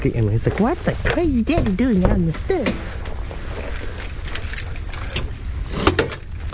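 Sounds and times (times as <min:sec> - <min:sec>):
speech: 0:00.0 - 0:03.1
steady low outdoor rumble: 0:00.0 - 0:06.5
car keys jangling opening a locked car in cold weather: 0:03.5 - 0:05.4.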